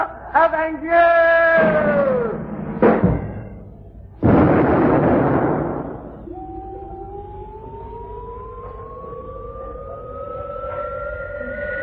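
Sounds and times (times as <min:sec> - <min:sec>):
speech: 0:00.4 - 0:02.2
cannon firing a human cannonball skyward: 0:04.2 - 0:06.2.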